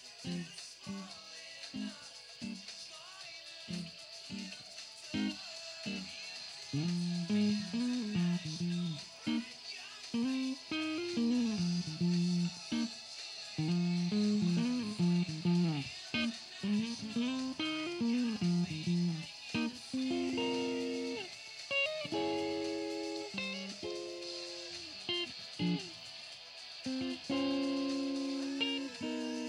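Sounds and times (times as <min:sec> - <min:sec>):
guitar amp noise: 0:00.0 - 0:01.1, 0:01.7 - 0:02.7, 0:03.7 - 0:13.0, 0:13.6 - 0:29.4.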